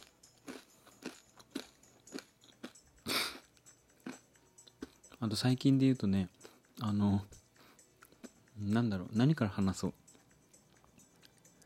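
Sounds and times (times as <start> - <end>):
crunchy bites into tortilla chips: 0.0 - 2.8
speech: 5.2 - 7.4, 8.6 - 10.0.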